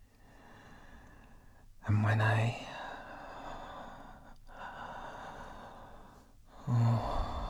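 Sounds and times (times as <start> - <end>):
speech: 1.8 - 2.7, 6.7 - 7.2
slow breathy exhales into a microphone: 6.7 - 7.4.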